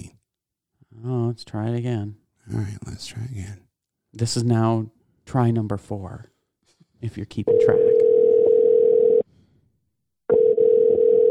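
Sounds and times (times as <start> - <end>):
speech: 1.0 - 6.3, 7.0 - 7.9
telephone ringing tone: 7.5 - 9.2, 10.3 - 11.2.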